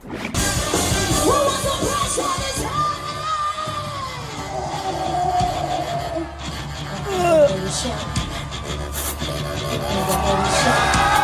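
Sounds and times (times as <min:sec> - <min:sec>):
crowd cheering and shouting: 0:01.1 - 0:11.2.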